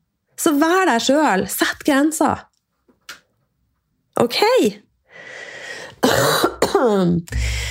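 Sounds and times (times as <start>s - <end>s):
speech: 0.4s - 2.5s, 4.2s - 5.3s, 6.1s - 7.6s
forceful cough: 6.0s - 7.0s.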